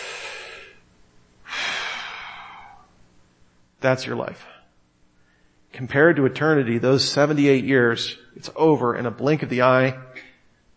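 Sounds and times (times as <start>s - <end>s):
person breathing in: 0.0s - 0.8s, 1.5s - 2.9s
speech: 3.8s - 4.6s, 5.8s - 10.2s.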